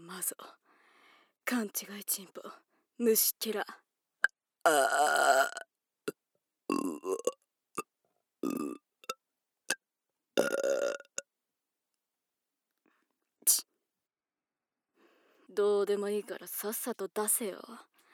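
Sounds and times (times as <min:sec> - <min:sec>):
speech: 0:00.1 - 0:00.7, 0:01.4 - 0:03.8, 0:04.6 - 0:05.7, 0:06.7 - 0:07.4, 0:15.6 - 0:17.9
loud burps, long and croaking or short: 0:04.6 - 0:05.7, 0:06.7 - 0:07.4, 0:08.4 - 0:09.2, 0:10.4 - 0:11.2.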